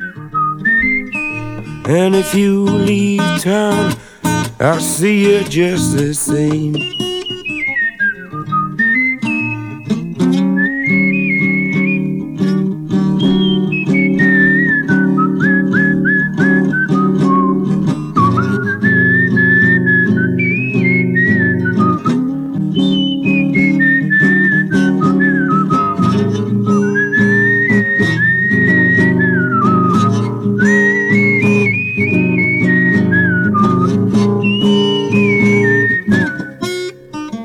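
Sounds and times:
person whistling a lively sliding melody: 0:00.0 - 0:37.2
speech: 0:01.9 - 0:07.0.

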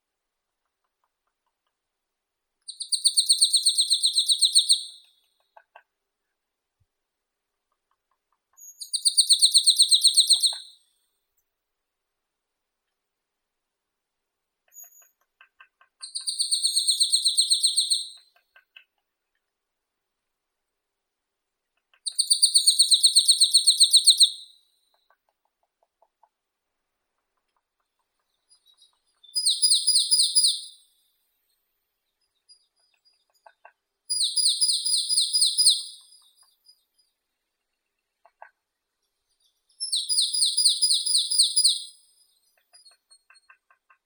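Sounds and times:
marsh tit Poecile palustris: 0:02.7 - 0:05.1, 0:08.8 - 0:10.7, 0:14.7 - 0:18.9, 0:22.0 - 0:25.1, 0:28.5 - 0:30.8, 0:32.4 - 0:36.8, 0:39.4 - 0:44.0.

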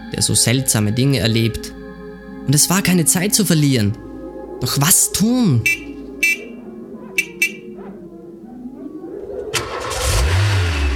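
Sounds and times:
speech: 0:00.1 - 0:01.8, 0:02.4 - 0:06.4
car engine roaring to life and revving: 0:09.5 - 0:10.9
car starter motor whirring: 0:09.5 - 0:10.9.

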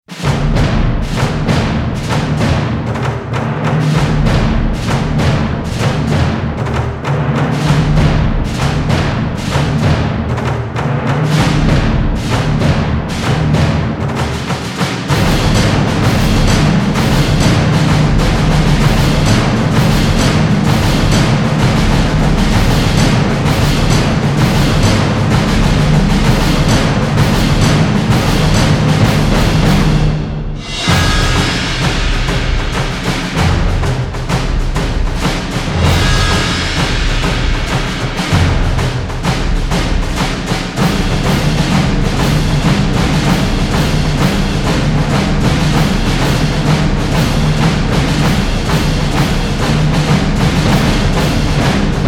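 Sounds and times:
drum effects: 0:00.0 - 0:52.0.

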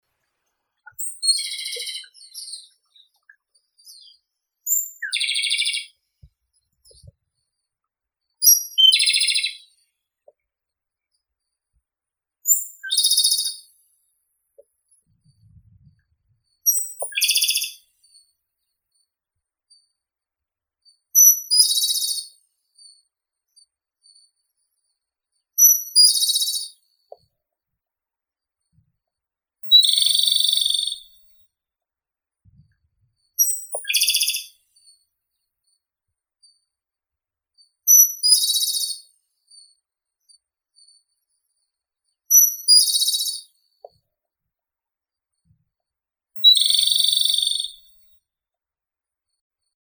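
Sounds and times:
Japanese robin Erithacus akahige singing: 0:00.9 - 0:06.0, 0:08.4 - 0:09.8, 0:12.5 - 0:13.6, 0:16.7 - 0:17.8, 0:21.2 - 0:22.2, 0:29.7 - 0:31.2, 0:33.4 - 0:34.5, 0:37.9 - 0:38.9, 0:46.4 - 0:47.9.

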